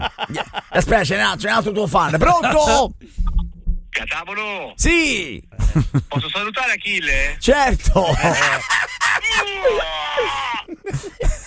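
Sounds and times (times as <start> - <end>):
laughter: 0.0 - 1.2, 5.6 - 6.5, 7.8 - 11.4
speech: 0.8 - 3.2, 4.0 - 10.5
person giving a loud strained scream: 9.3 - 10.8.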